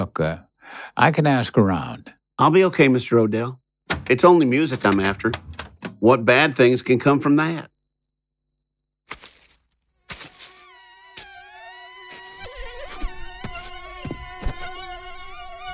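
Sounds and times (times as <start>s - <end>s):
speech: 0.0s - 7.7s
sharp sudden clicks or taps: 3.9s - 6.0s
high-pitched mosquito whine: 10.1s - 15.7s.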